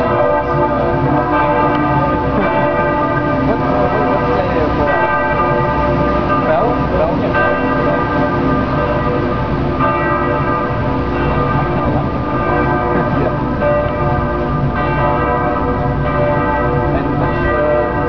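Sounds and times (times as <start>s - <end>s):
church bells ringing: 0.0s - 18.0s.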